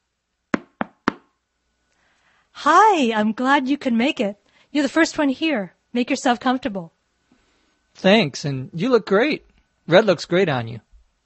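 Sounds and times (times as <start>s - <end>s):
knocking on a wooden door: 0.6s - 1.3s
speech: 2.6s - 7.0s, 8.0s - 10.8s.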